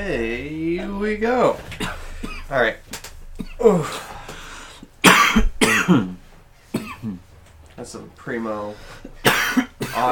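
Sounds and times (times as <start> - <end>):
speech: 0.0 - 2.8, 3.6 - 4.1, 5.9 - 6.2, 7.8 - 10.0
person coughing in a ragged fit: 1.8 - 2.6, 3.4 - 4.1, 5.0 - 7.2, 9.2 - 10.0.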